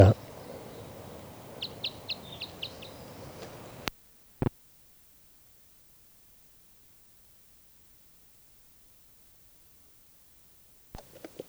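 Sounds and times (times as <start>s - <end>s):
speech: 0.0s - 0.2s
bird calling: 0.0s - 3.9s, 11.0s - 11.4s
steady hiss: 0.0s - 3.9s, 11.0s - 11.4s.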